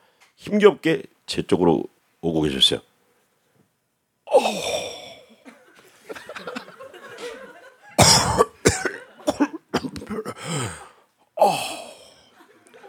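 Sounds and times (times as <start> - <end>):
speech: 0.4 - 2.9
rough breaths of an elderly man: 4.3 - 5.4, 10.3 - 12.3
laughter: 5.4 - 8.0, 12.3 - 12.8
elderly man coughing harshly and wheezily: 8.0 - 12.2.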